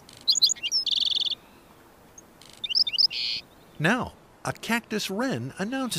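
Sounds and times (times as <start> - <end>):
black-throated sparrow singing from thorn scrub in the southwestern desert: 0.0 - 4.3
speech: 3.8 - 5.9.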